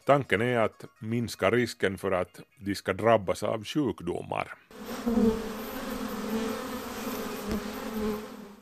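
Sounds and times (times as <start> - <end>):
speech: 0.1 - 5.6
honeybees buzzing: 4.7 - 8.5.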